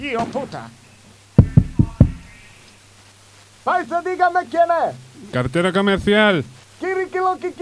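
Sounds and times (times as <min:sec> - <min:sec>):
speech: 0:00.0 - 0:00.8, 0:03.6 - 0:07.6
sharp knocks on a door: 0:01.4 - 0:02.4.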